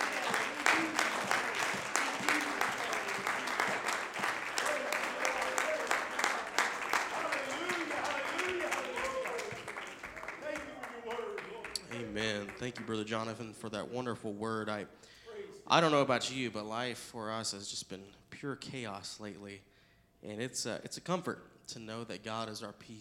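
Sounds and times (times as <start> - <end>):
audience clapping hands in dense applause: 0.0 - 13.3
speech: 12.7 - 22.9.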